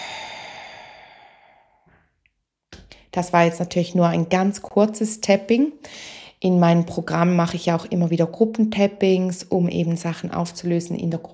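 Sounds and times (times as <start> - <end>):
long breath out through an open mouth during a relaxation tapping exercise: 0.0 - 1.9
speech: 3.1 - 11.3.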